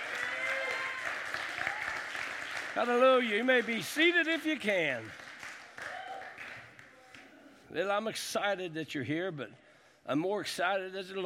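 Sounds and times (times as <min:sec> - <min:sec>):
church congregation clapping in praise during a morning service: 0:00.0 - 0:07.3
speech: 0:02.8 - 0:05.2, 0:07.7 - 0:11.2.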